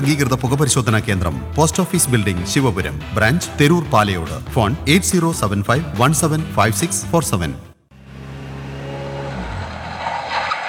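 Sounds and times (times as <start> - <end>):
speech: 0.0 - 7.7
car pulling up and stopping: 7.9 - 10.6.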